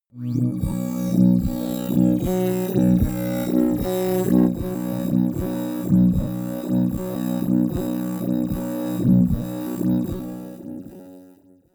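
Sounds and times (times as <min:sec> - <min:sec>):
bubbling bass drone: 0:00.2 - 0:10.9.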